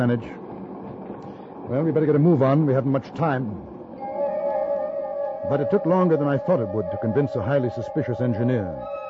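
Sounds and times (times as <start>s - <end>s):
speech: 0.0s - 0.4s, 1.7s - 3.7s, 5.4s - 9.0s
train moving along the rails: 0.0s - 9.0s
sustained metallic whine of a train on rails: 3.6s - 9.0s.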